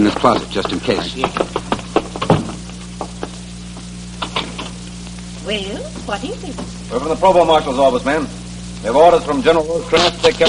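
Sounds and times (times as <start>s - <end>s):
speech: 0.0s - 1.6s, 5.5s - 10.4s
steady low electrical hum: 0.0s - 10.4s
heavy knocking on a house door: 0.1s - 3.3s.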